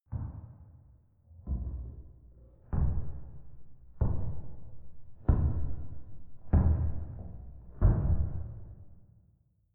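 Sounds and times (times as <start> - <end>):
slow footsteps on wooden church stairs: 2.8 - 9.0.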